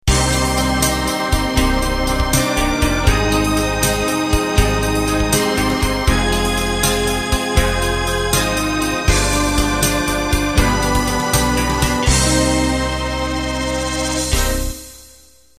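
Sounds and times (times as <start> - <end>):
gentle unplugged slow rock ending in six-eight or twelve-eight time: 0.1 - 15.1.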